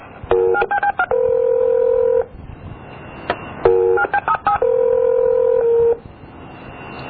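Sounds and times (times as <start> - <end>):
telephone keypad tones dialing a phone number: 0.3 - 2.3, 3.6 - 6.0.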